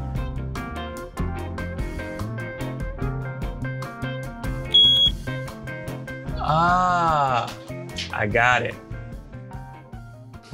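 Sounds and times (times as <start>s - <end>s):
upbeat music: 0.0s - 10.5s
ATG tank monitor alarm for underground storage tanks beeping: 4.7s - 5.2s
speech: 6.5s - 8.8s.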